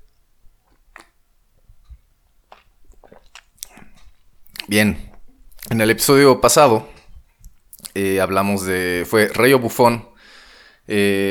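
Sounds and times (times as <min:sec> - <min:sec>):
person sipping and swallowing coffee: 0:00.6 - 0:05.9, 0:06.9 - 0:08.0
speech: 0:04.7 - 0:05.1, 0:05.7 - 0:07.0, 0:08.0 - 0:10.1, 0:10.9 - 0:11.2.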